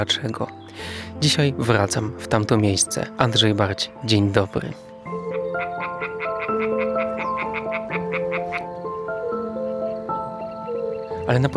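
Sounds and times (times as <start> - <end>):
speech: 0.0 - 4.9, 11.3 - 11.5
European tree frogs calling at a pond among fields: 0.0 - 11.5
layered sustained trilling of European tree frogs: 5.0 - 11.2.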